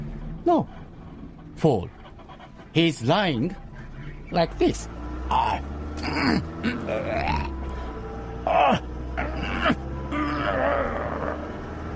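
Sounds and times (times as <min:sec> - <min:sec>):
speech: 0:00.4 - 0:00.8, 0:01.6 - 0:02.0, 0:02.8 - 0:03.6, 0:04.3 - 0:07.6, 0:08.5 - 0:09.8
voice imitating ragged gasping for breath: 0:06.0 - 0:11.5.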